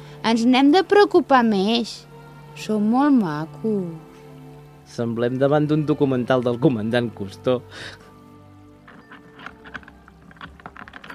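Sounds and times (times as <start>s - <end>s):
speech: 0.2s - 4.1s, 4.9s - 8.0s
keys rattling and working the front door lock: 8.9s - 11.1s.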